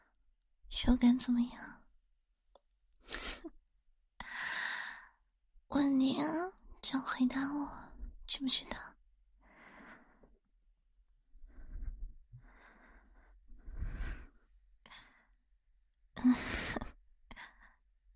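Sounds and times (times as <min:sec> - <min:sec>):
speech: 0:00.8 - 0:01.8, 0:06.3 - 0:08.9, 0:16.2 - 0:16.6
uneven exhales and sighs: 0:04.2 - 0:05.2, 0:11.5 - 0:15.4, 0:16.2 - 0:17.8
heavy breathy panting: 0:11.5 - 0:14.4.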